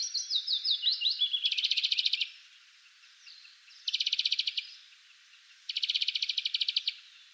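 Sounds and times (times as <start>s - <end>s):
European greenfinch (Chloris chloris) twittering run of descending notes: 0.0s - 2.3s, 3.3s - 4.8s, 5.7s - 7.0s.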